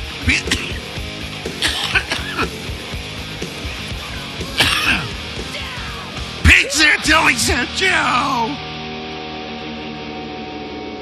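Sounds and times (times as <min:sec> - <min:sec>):
explosive cough and sneeze together: 0:00.3 - 0:00.9, 0:01.6 - 0:02.6, 0:04.6 - 0:05.2
speech: 0:07.1 - 0:08.7.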